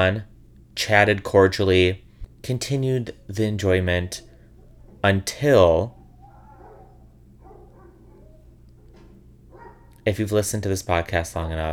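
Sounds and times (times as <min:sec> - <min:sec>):
speech: 0:00.0 - 0:04.3, 0:05.0 - 0:06.0, 0:10.1 - 0:11.7
steady low hum: 0:00.0 - 0:11.7
dog barking: 0:04.2 - 0:05.0, 0:05.9 - 0:10.0.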